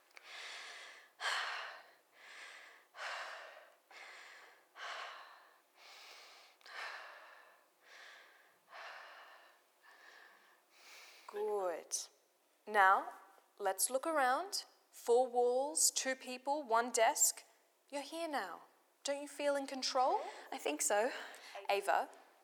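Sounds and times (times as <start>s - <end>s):
slow deliberate breathing exercise: 0.1s - 11.4s
speech: 11.3s - 22.2s.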